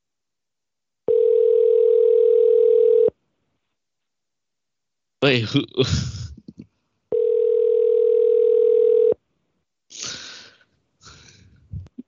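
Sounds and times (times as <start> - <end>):
telephone dial tone after the caller hangs up: 1.1 - 3.1, 7.1 - 9.2
speech: 5.2 - 6.2.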